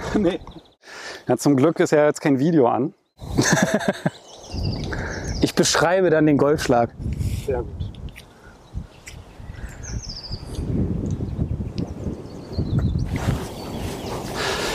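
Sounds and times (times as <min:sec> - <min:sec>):
small birds chirping faintly: 0:00.0 - 0:06.0, 0:07.7 - 0:14.7
speech: 0:00.1 - 0:04.8, 0:05.6 - 0:07.9
laughter: 0:03.3 - 0:04.2
strong wind blowing outdoors on a golf course: 0:04.4 - 0:14.7.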